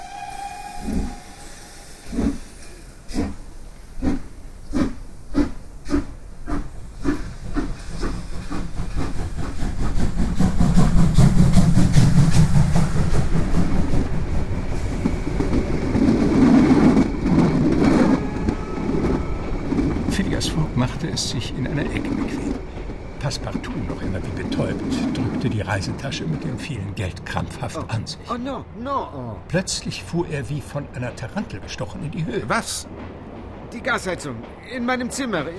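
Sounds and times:
steam locomotive chuffing as it pulls away: 0.0s - 26.4s
steam train rolling on the rails with rumble and hiss: 0.0s - 35.5s
speech: 21.0s - 22.4s, 23.3s - 33.0s, 33.7s - 35.5s.

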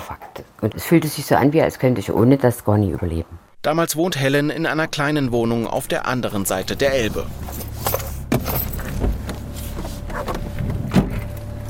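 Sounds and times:
speech: 0.6s - 7.9s
car driving and turning, heard from inside: 4.4s - 11.6s.

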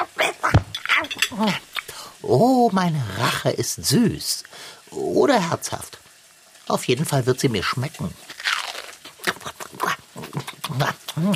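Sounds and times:
speech: 1.3s - 1.6s, 2.2s - 6.0s, 6.7s - 8.3s, 11.2s - 11.3s
crunchy biting and chewing of food: 8.2s - 10.8s.

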